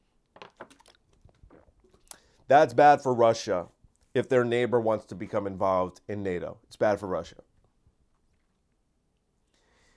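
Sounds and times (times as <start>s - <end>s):
person sipping a drink: 0.7s - 2.4s
slurping and swallowing: 0.8s - 2.3s
speech: 2.5s - 7.5s.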